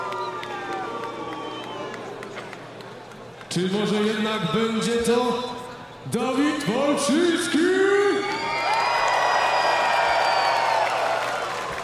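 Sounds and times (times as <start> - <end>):
large crowd cheering with shouts and whoops: 0.0 - 3.5, 7.8 - 11.8
speech: 3.6 - 8.0.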